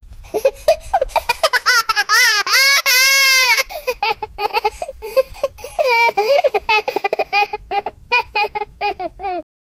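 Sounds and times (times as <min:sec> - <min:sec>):
kid laughing: 0:00.3 - 0:09.5.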